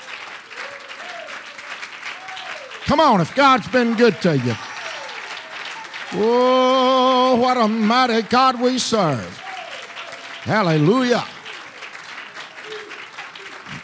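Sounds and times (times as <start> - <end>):
large group applauding: 0.0 - 13.8
speech: 2.8 - 4.7, 6.1 - 9.4, 10.4 - 11.3
man calling out loudly: 2.8 - 4.8, 6.1 - 9.5, 10.4 - 11.4.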